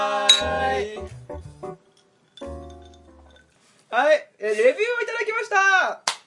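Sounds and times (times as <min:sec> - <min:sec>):
sustained tonal musical backing: 0:00.1 - 0:03.4
glasses clinking in a toast: 0:00.3 - 0:00.5, 0:01.9 - 0:03.6
speech: 0:03.9 - 0:06.0.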